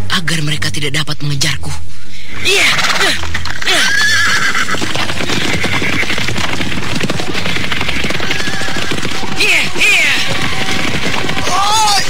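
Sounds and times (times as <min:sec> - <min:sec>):
speech: 0:00.2 - 0:04.9
horses neighing: 0:02.5 - 0:12.0.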